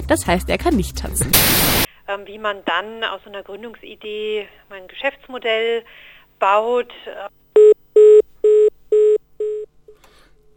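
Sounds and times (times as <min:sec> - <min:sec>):
speech: 0:00.1 - 0:07.4
telephone line electronic beeps after a dropped call: 0:07.6 - 0:09.7.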